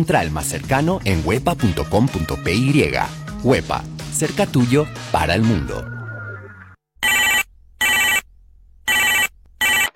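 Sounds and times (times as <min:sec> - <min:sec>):
speech: 0:00.0 - 0:06.0
telephone ringing in bright electronic double rings: 0:07.0 - 0:08.3, 0:08.9 - 0:09.9.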